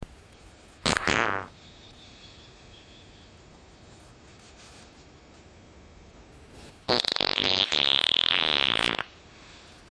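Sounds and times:
quick wet fart: 0.8 - 1.5, 6.9 - 9.2.

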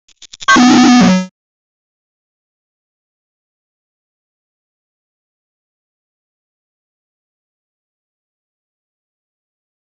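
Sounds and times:
video game negative sound: 0.3 - 1.3.

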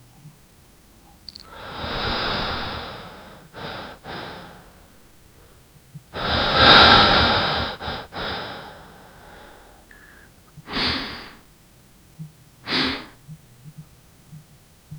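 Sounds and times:
person inhaling one continuous breath: 1.4 - 5.6, 6.2 - 11.5, 12.7 - 13.2.

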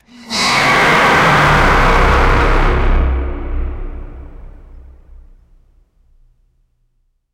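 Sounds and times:
velociraptor roar: 0.0 - 5.2.

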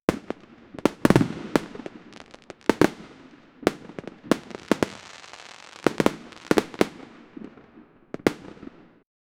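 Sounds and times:
chiptune fireworks: 0.1 - 7.5, 8.2 - 8.9.

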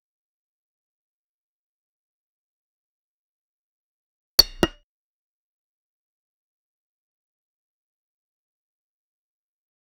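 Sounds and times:
cricket ball striking bat: 4.4 - 4.8.

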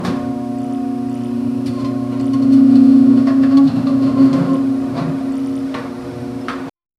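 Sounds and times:
heavy metallic door creak: 1.3 - 6.1.

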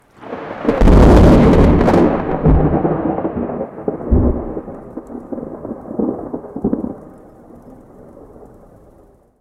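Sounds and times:
sharp thunder claps: 0.2 - 7.1.

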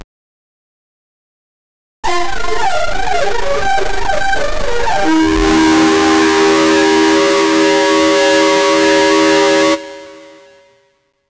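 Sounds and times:
8-bit game over sound: 2.1 - 10.6.

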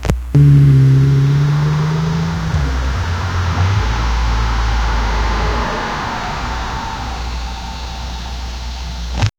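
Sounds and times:
car interior during night drive: 0.0 - 9.3.

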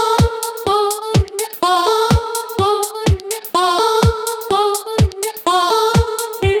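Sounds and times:
fast paced chopped vintage music at 125 bpm: 0.2 - 6.4.

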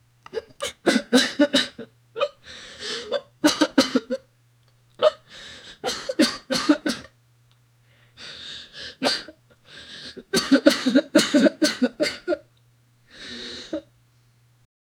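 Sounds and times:
harsh rattling cough of a man with an injury: 0.3 - 2.4, 3.0 - 4.2, 5.8 - 7.1, 9.0 - 9.3, 10.1 - 12.4.

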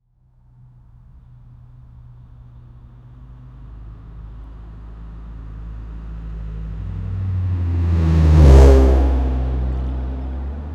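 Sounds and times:
car noise: 6.8 - 10.7.

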